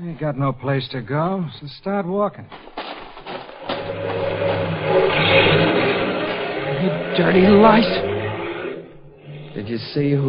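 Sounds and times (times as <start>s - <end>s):
speech: 0.0s - 2.8s, 6.8s - 8.1s, 9.6s - 10.2s
car engine starting and revving: 3.5s - 10.2s.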